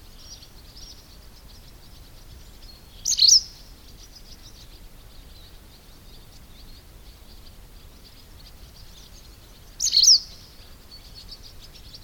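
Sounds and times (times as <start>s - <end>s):
white wagtail faint high twittering in spring: 0.0s - 12.0s
white wagtail sharp high chirp in spring: 9.8s - 10.3s.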